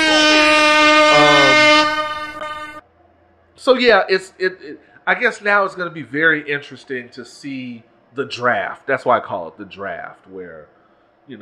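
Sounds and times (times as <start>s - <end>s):
brassy air horn blaring: 0.0s - 2.8s
speech: 3.6s - 11.4s.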